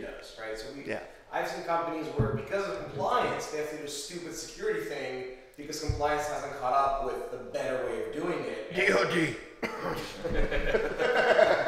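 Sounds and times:
speech: 0:00.2 - 0:11.5
person coughing: 0:09.6 - 0:10.2
laughter: 0:09.6 - 0:11.6.

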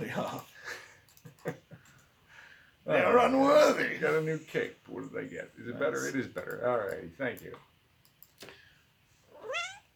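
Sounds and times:
speech: 0:00.0 - 0:00.5, 0:02.9 - 0:07.7
cat meowing: 0:09.3 - 0:09.9.

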